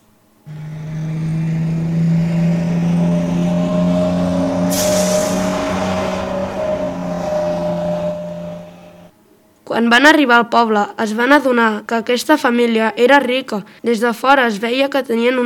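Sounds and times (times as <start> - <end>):
bus engine droning as the bus drives along: 0.0 - 9.1
air hiss: 4.7 - 5.6
speech: 9.8 - 15.4.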